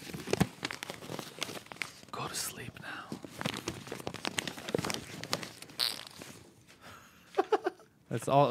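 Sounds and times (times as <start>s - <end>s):
paper being crumpled: 0.0s - 2.3s, 3.2s - 6.6s
speech: 8.1s - 8.4s.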